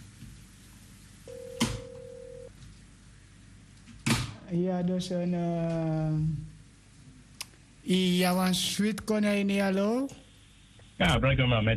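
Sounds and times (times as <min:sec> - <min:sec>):
telephone ringing: 0:01.3 - 0:02.5
speech: 0:04.5 - 0:06.5, 0:07.9 - 0:10.2, 0:11.0 - 0:11.7.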